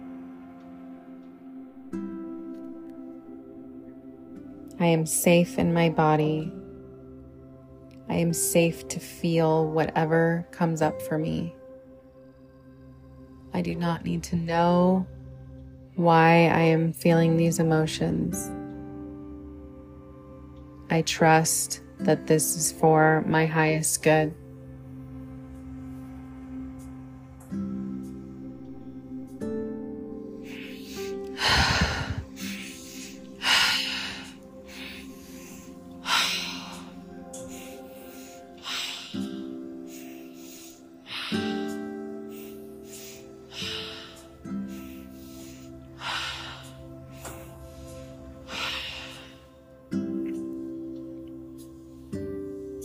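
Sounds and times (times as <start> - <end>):
sustained droning musical background: 0.0 - 52.8
speech: 4.8 - 6.6, 8.1 - 11.6, 13.6 - 15.2, 16.0 - 18.6, 20.9 - 24.4
forceful rhythmic breathwork breathing: 30.1 - 49.8.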